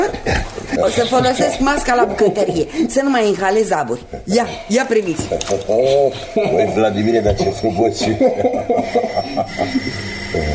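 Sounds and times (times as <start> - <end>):
laughter: 0.0 - 2.9, 5.1 - 10.5
speech: 0.8 - 10.5
doorbell chiming at home: 7.0 - 10.5.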